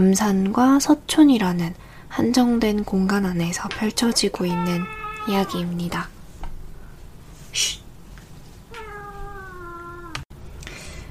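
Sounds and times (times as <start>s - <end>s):
speech: 0.0s - 6.2s, 7.6s - 7.8s
pet cat meowing: 3.8s - 5.8s, 8.7s - 10.2s.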